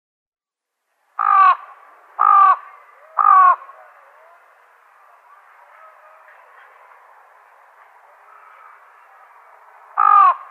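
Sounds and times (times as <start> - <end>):
fan-tailed raven harsh nasal caws: 1.2 - 3.8, 10.0 - 10.5.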